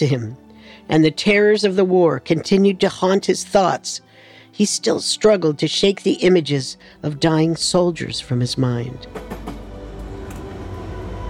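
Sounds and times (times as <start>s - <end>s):
speech: 0.0s - 9.7s
train running along rails: 9.0s - 11.2s.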